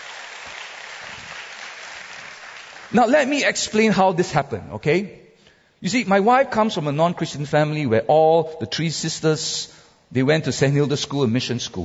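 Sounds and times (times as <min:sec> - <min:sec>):
church congregation clapping hands: 0:00.0 - 0:03.4
speech: 0:02.9 - 0:05.2, 0:05.8 - 0:11.8.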